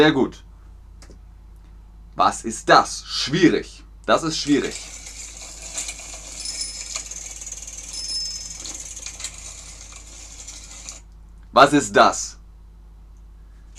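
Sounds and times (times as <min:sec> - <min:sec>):
speech: 0:00.0 - 0:00.5, 0:02.2 - 0:05.0, 0:11.6 - 0:12.4
bicycle ticking with mechanical ratcheting of gears: 0:04.4 - 0:11.0
bright metallic clinks of a bicycle: 0:06.1 - 0:09.4.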